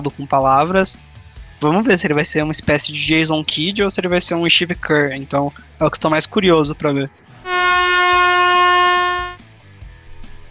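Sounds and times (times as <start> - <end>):
speech: 0.0 - 7.8
air horn blast: 7.4 - 9.4.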